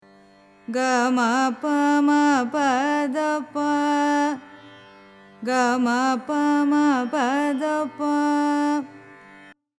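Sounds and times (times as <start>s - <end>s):
carnatic music in raga mayamalavagowla: 0.0s - 9.6s.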